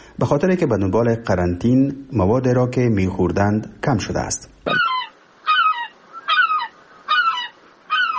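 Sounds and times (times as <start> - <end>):
speech: 0.2 - 4.9
seagulls in Rome Italy squawking: 4.7 - 8.1.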